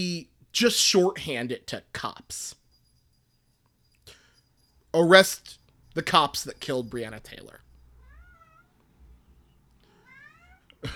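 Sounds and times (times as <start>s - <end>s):
speech: 0.0s - 2.6s, 4.9s - 7.6s
cat meowing: 8.0s - 8.8s, 9.9s - 10.8s.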